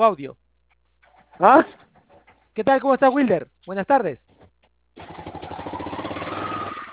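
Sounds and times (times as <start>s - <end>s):
speech: 0.0s - 0.4s, 1.4s - 1.8s, 2.6s - 4.2s
motorcycle engine rumbling heard over a phone call: 4.4s - 6.9s.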